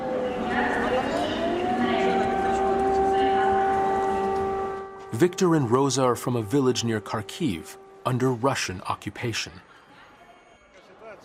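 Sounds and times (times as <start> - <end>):
air raid siren wailing at a train station: 0.0 - 8.6
speech: 5.2 - 9.7.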